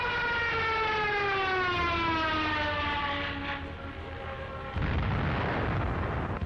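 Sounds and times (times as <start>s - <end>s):
air-raid siren wailing: 0.0s - 6.4s
dense roaring rumble: 4.7s - 6.4s
loud explosive blast during an air raid: 4.8s - 6.4s.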